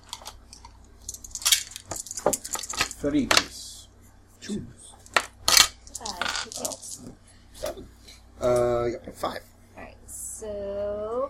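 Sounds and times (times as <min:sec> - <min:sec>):
several dice clattering and rattling across a table: 0:01.0 - 0:03.5, 0:05.0 - 0:07.0
speech: 0:03.0 - 0:03.5, 0:04.5 - 0:04.8, 0:06.4 - 0:09.5, 0:10.4 - 0:11.2.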